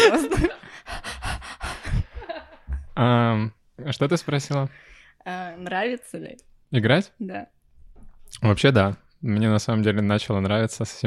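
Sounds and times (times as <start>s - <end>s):
dog panting in quick rhythmic breaths: 0.6s - 2.4s
speech: 3.0s - 7.6s, 8.3s - 11.0s.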